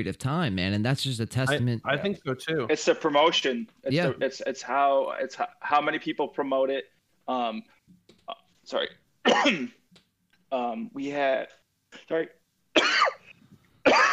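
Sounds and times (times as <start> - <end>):
speech: 0.0 - 9.8, 10.5 - 13.0
person clearing throat: 9.3 - 9.8, 12.8 - 13.3, 13.9 - 14.1
person coughing: 9.3 - 9.8, 12.8 - 14.1.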